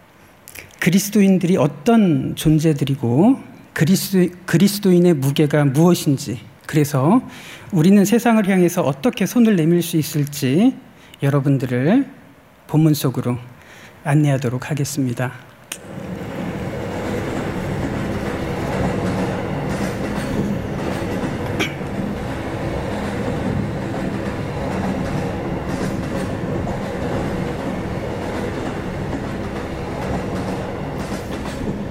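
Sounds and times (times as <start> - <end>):
speech: 0.8 - 16.0
train wheels clattering on rails: 15.8 - 31.8.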